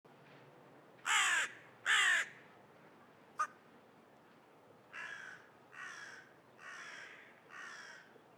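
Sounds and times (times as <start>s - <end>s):
carrion crow Corvus corone cawing: 1.1s - 2.3s, 5.0s - 8.1s.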